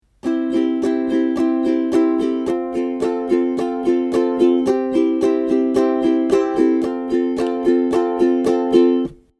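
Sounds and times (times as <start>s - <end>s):
ukulele strumming: 0.0s - 9.3s.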